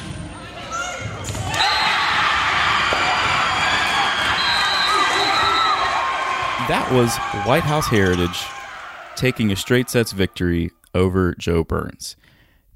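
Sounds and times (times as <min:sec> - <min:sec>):
crowd cheering and shouting after a volleyball match win: 0:00.5 - 0:10.5
speech: 0:06.7 - 0:08.5, 0:09.2 - 0:12.7.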